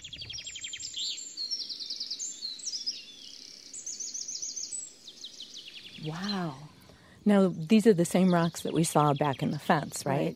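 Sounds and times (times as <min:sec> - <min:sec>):
several birds singing and chirping in a forest: 0:00.0 - 0:10.3
speech: 0:06.0 - 0:10.3.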